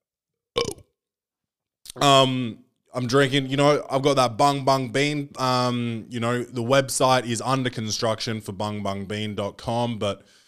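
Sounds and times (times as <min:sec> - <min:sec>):
throaty voiced belch: 0:00.6 - 0:01.0
speech: 0:02.0 - 0:10.4.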